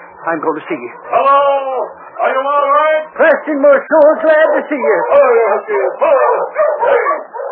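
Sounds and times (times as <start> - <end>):
speech: 0.2 - 7.5
dog barking and yipping: 4.2 - 7.5.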